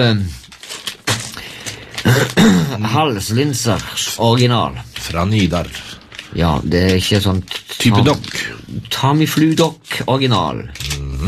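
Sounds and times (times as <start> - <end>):
speech: 0.0 - 0.4, 2.0 - 11.2
person with swine flu coughing: 2.0 - 2.9.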